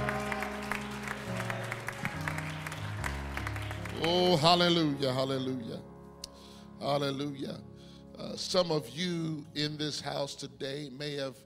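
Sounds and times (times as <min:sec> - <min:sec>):
audience clapping hands: 0:00.0 - 0:04.8
sustained organ or keyboard chords: 0:00.0 - 0:11.4
speech: 0:04.0 - 0:05.9, 0:06.8 - 0:11.4.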